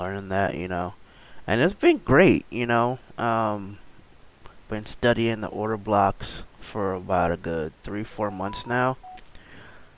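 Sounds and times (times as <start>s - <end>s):
speech: 0.0s - 3.8s, 4.7s - 9.1s
short electronic phone notification tones: 8.3s - 9.2s.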